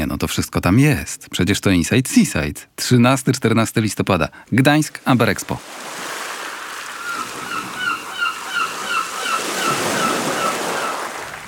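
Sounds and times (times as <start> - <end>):
speech: 0.2 - 6.0
ocean surf: 5.4 - 11.4
short repeated bird-like calls: 6.9 - 11.3.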